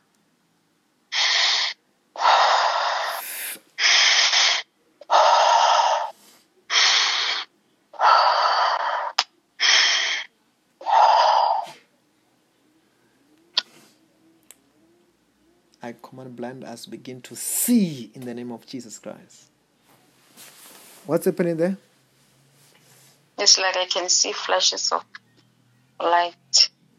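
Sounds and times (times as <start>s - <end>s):
person breathing heavily in and out: 1.1s - 11.9s, 22.6s - 23.4s
speech: 16.3s - 19.5s, 21.1s - 21.9s, 23.5s - 25.1s, 26.0s - 26.7s.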